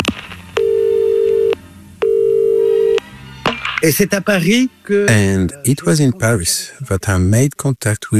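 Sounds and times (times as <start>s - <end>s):
telephone ringing tone: 0.6s - 3.0s
person talking over a slightly noisy line: 3.8s - 8.1s
speech: 3.8s - 8.1s.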